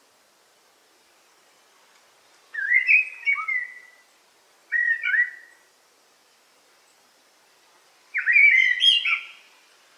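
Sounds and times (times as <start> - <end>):
Eurasian blackbird song in a forest: 2.5 - 5.7, 8.1 - 9.6.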